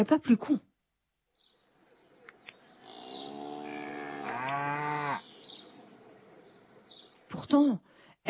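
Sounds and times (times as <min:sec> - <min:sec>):
speech: 0:00.0 - 0:00.7, 0:07.5 - 0:08.2
faint birds chirping outdoors: 0:00.7 - 0:08.2
cow giving a long low moo: 0:02.7 - 0:06.0.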